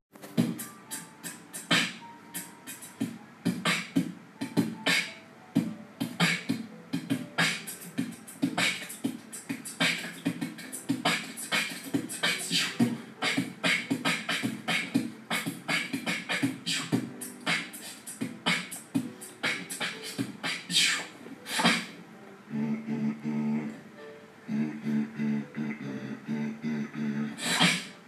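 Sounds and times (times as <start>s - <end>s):
beatboxing: 0.2s - 23.8s, 24.5s - 28.0s.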